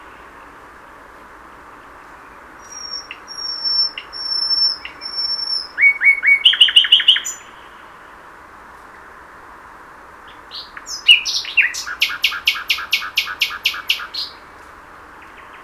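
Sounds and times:
common nightingale Luscinia megarhynchos singing: 0:01.7 - 0:08.1, 0:10.2 - 0:14.5, 0:15.1 - 0:15.6.

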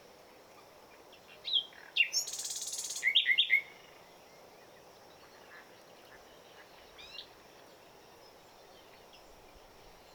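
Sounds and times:
common nightingale Luscinia megarhynchos singing: 0:01.5 - 0:03.8.

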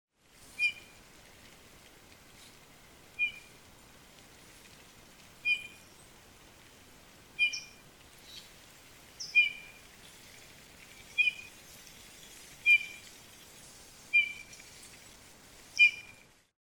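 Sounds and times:
faint hiss: 0:00.1 - 0:16.6
Eurasian bullfinch Pyrrhula pyrrhula piping whistles: 0:00.6 - 0:01.0, 0:03.2 - 0:03.5, 0:05.4 - 0:05.8, 0:07.4 - 0:08.4, 0:09.2 - 0:09.8, 0:11.2 - 0:11.5, 0:12.6 - 0:13.0, 0:14.1 - 0:14.6, 0:15.8 - 0:16.2.

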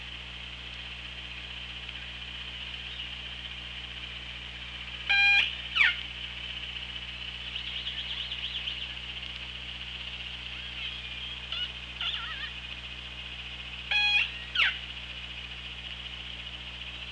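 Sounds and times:
underwater hiss and hum on hydrophone: 0:00.1 - 0:17.1
killer whale harmonic pulsed bursts: 0:13.9 - 0:14.8.

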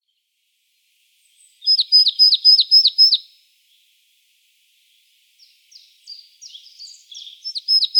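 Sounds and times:
Poecile palustris calling: 0:01.6 - 0:03.2, 0:05.7 - 0:07.9.

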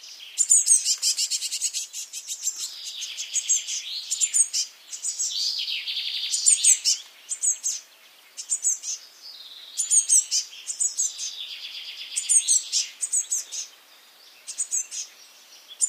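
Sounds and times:
Eurasian blue tit Cyanistes caeruleus very high thin sharp call notes: 0:00.4 - 0:07.8, 0:08.4 - 0:09.0, 0:09.8 - 0:11.4, 0:12.2 - 0:13.7, 0:14.5 - 0:15.1.

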